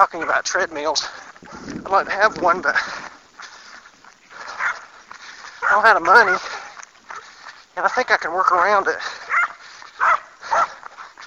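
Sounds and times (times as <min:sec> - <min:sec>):
speech: 0:00.0 - 0:03.0, 0:05.8 - 0:06.6, 0:07.8 - 0:09.3
dog barking behind a chain link fence: 0:04.5 - 0:04.9, 0:05.6 - 0:06.5, 0:09.3 - 0:10.8.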